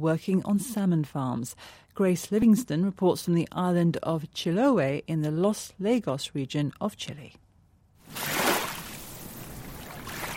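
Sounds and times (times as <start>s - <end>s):
speech: 0.0s - 7.4s
sea water washing against the shore of a lead grey sea in Chiloé, Chile: 8.0s - 10.3s.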